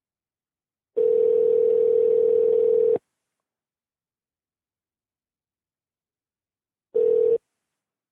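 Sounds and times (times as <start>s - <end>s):
phone ringback tone while a call waits to be answered: 1.0s - 3.0s, 7.0s - 7.4s.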